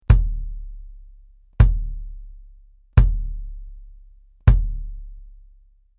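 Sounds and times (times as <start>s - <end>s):
bass drum with hard plastic: 0.0s - 5.8s.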